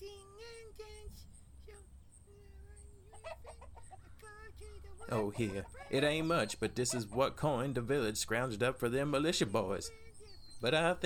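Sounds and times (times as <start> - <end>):
low hum: 0.0 - 11.0
chickens clucking at the coop: 2.7 - 11.0
speech: 5.1 - 10.0, 10.6 - 11.0.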